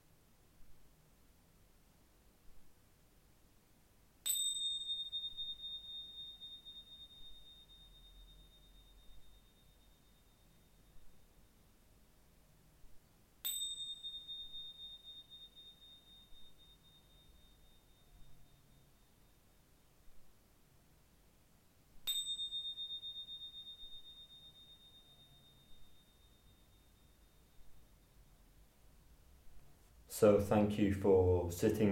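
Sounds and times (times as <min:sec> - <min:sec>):
meditation bell chiming: 0:04.2 - 0:11.6, 0:13.4 - 0:19.9, 0:22.0 - 0:28.6
speech: 0:30.2 - 0:31.8.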